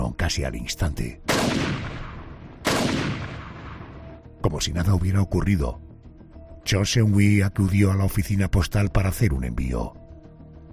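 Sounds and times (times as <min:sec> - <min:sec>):
speech: 0:00.1 - 0:01.9, 0:04.5 - 0:05.8, 0:06.6 - 0:10.0
pistol gunshot: 0:01.3 - 0:03.9.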